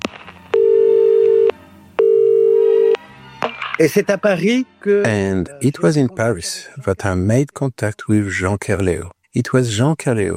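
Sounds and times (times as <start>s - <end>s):
electronic telephone line ringing tone: 0.5s - 3.0s
speech: 3.8s - 10.3s.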